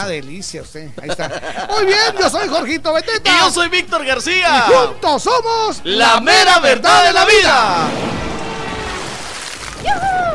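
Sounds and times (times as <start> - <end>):
speech: 0.0 - 8.2
laughter: 0.8 - 3.1
heavy rain: 7.9 - 10.3.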